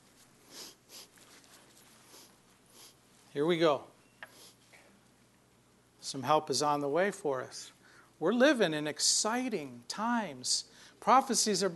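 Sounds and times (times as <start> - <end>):
nasal sniffs clearing a runny nose: 0.5 - 1.2, 2.0 - 3.0, 4.3 - 4.8
speech: 3.4 - 3.9, 6.1 - 11.7.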